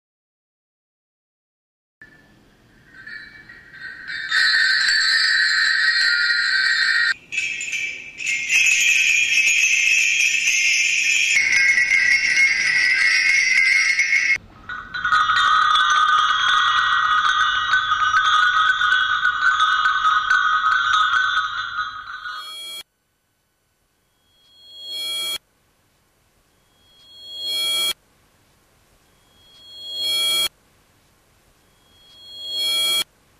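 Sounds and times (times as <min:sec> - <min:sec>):
bell ringing to call someone: 0:02.9 - 0:22.8, 0:24.1 - 0:25.4, 0:26.6 - 0:28.0, 0:29.2 - 0:30.5, 0:31.7 - 0:33.1.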